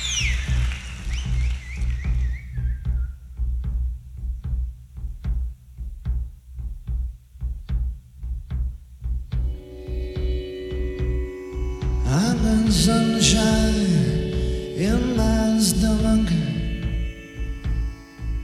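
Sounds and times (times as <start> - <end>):
heavy sustained bass drone in live rock concert at Wembley Stadium: 0.0 - 18.4
steady drum hits at a driving pulse: 1.3 - 18.4
bright held keyboard chords: 9.4 - 18.4
descending synth sweep: 9.4 - 18.4
speech: 12.8 - 13.9.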